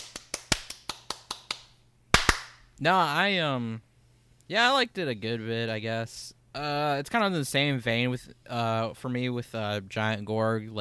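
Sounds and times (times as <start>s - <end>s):
brisk hand claps: 0.0s - 2.6s
speech: 2.8s - 3.9s, 4.5s - 10.8s.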